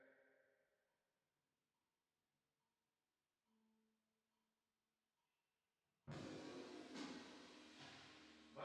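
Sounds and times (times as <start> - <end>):
drums with reverb: 6.1 - 8.6.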